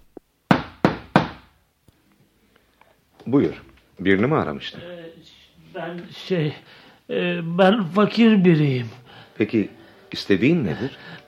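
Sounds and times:
firm knocking on a wooden door at iftar time during Ramadan: 0:00.5 - 0:01.5
speech: 0:03.3 - 0:11.2.

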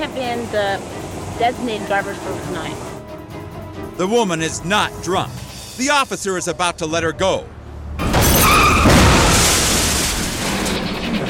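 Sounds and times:
speech: 0:00.0 - 0:02.9, 0:04.0 - 0:07.6
loud crash of glass and metal with scattering debris: 0:08.0 - 0:11.2.

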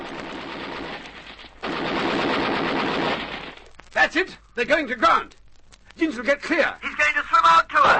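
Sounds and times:
rapid gunfire in a battle scene: 0:00.0 - 0:03.8
speech: 0:04.1 - 0:05.4, 0:06.0 - 0:07.9.

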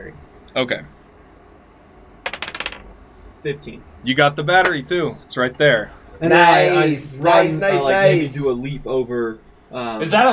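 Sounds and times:
speech: 0:00.5 - 0:01.0, 0:03.4 - 0:10.3
dice clattering across a hard tabletop: 0:02.2 - 0:03.0.

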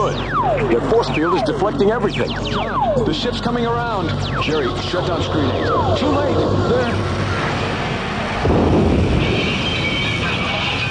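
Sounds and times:
speech: 0:00.1 - 0:07.2
lightning strike with thunder crack: 0:06.5 - 0:10.8
sustained rumbling roar: 0:07.0 - 0:10.7.

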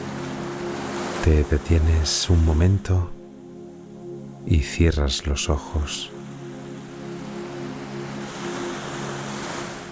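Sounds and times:
ocean waves lapping against rocks: 0:00.0 - 0:02.9, 0:06.1 - 0:09.9
speech: 0:01.2 - 0:03.2, 0:04.5 - 0:06.1.

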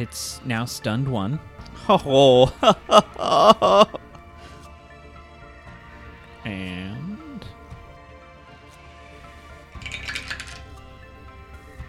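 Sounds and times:
speech: 0:00.0 - 0:04.1
laughter: 0:01.8 - 0:04.1
dice clattering across a tabletop: 0:09.8 - 0:10.7.

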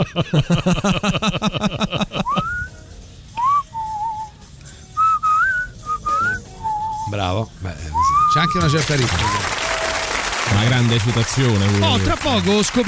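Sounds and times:
speech: 0:00.0 - 0:01.7, 0:08.6 - 0:09.5, 0:10.6 - 0:12.8
laughter: 0:00.0 - 0:02.7
burst of rapid rhythmic sound: 0:00.1 - 0:12.8
person whistling a simple melody: 0:02.2 - 0:04.4, 0:05.0 - 0:07.2, 0:07.9 - 0:09.5.

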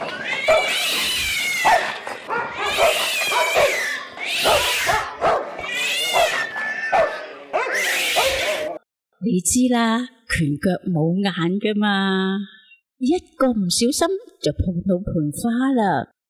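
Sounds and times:
cat screeching and yowling while fighting a dog: 0:00.0 - 0:08.8
dog barking while fighting a cat: 0:00.5 - 0:00.7, 0:01.6 - 0:03.8, 0:04.4 - 0:08.8
speech: 0:09.4 - 0:16.2.

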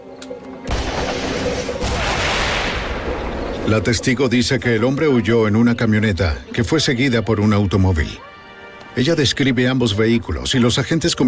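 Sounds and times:
shoulder-fired rocket launch blast: 0:00.7 - 0:04.2
speech: 0:03.7 - 0:08.3, 0:09.0 - 0:11.2.

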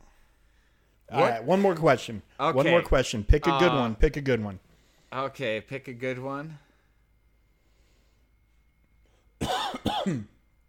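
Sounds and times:
speech: 0:01.1 - 0:06.6, 0:09.4 - 0:10.3
person coughing harsh chesty coughs: 0:09.4 - 0:10.4.

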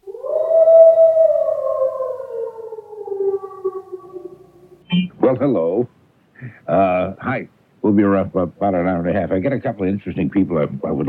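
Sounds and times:
wolf howling: 0:00.0 - 0:04.8
speech: 0:05.3 - 0:11.0.

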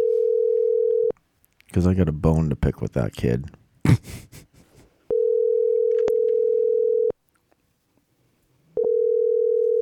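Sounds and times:
phone ringback tone on an outgoing call: 0:00.0 - 0:01.1, 0:05.1 - 0:07.2, 0:08.8 - 0:09.7
speech: 0:01.7 - 0:04.5.

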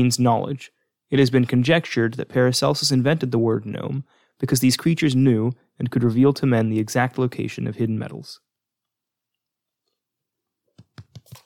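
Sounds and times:
speech: 0:00.0 - 0:08.5
muffled hand clapping while holding paper: 0:10.8 - 0:11.4.

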